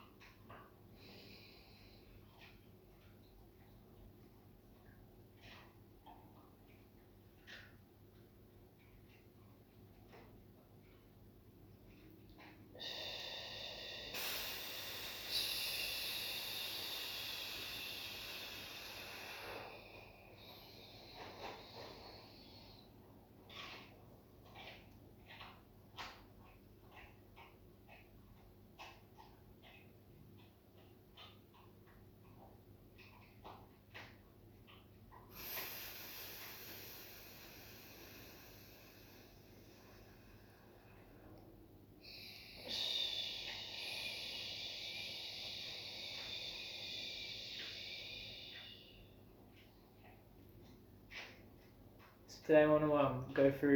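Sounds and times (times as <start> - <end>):
slow deliberate breathing: 0.9 - 2.7, 11.9 - 26.2, 34.0 - 52.7
speech: 52.5 - 53.7.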